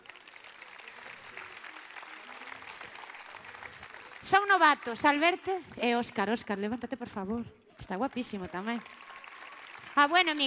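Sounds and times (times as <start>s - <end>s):
audience applause at a murga contest in Pontevedra: 0.0s - 5.7s, 8.0s - 10.4s
speech: 4.2s - 9.0s, 10.0s - 10.4s.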